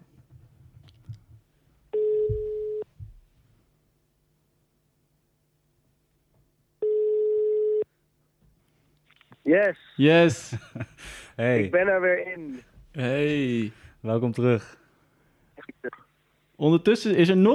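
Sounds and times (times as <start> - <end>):
long steady telephone tones while adding a caller: 1.9 - 2.9, 6.8 - 7.8
speech: 9.5 - 14.8, 16.6 - 17.5
laughter: 10.2 - 11.7.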